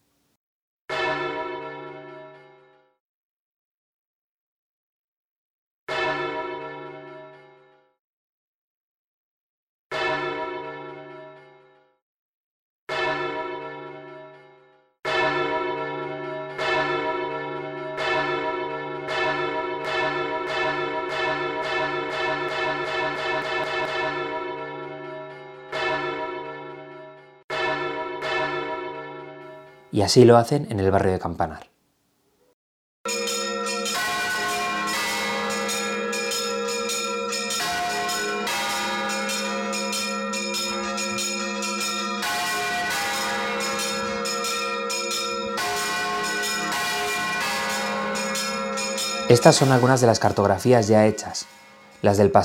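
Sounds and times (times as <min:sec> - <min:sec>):
church bells ringing in the city centre of Valencia: 0:00.9 - 0:02.8, 0:05.9 - 0:07.7, 0:09.9 - 0:11.8, 0:12.9 - 0:29.9, 0:33.1 - 0:52.4
speech: 0:30.0 - 0:31.7, 0:49.3 - 0:52.4.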